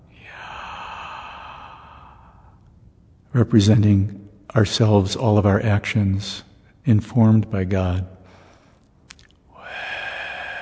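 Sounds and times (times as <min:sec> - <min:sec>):
deep inhaled breath: 0:00.2 - 0:02.7, 0:09.6 - 0:10.6
speech: 0:03.3 - 0:08.2.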